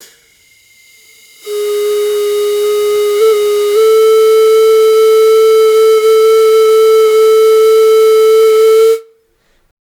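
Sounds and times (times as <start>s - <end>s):
breathy pan pipe solo: 1.4s - 9.1s.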